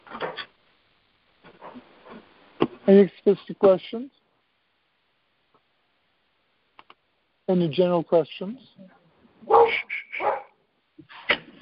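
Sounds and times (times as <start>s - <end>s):
speech: 2.9s - 4.2s, 7.5s - 9.0s
dog barking: 9.4s - 10.6s.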